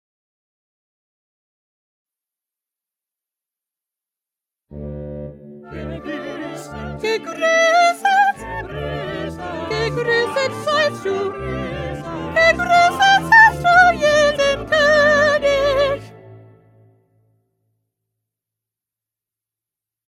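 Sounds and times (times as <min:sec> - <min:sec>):
second soprano voice: 0:05.7 - 0:16.2.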